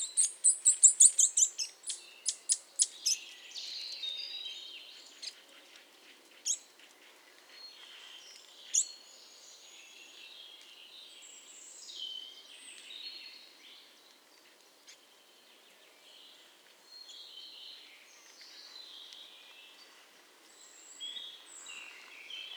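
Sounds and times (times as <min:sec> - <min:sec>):
Eurasian nuthatch Sitta europaea calling: 0:00.0 - 0:03.2
soft thin bird sounds: 0:00.0 - 0:22.5.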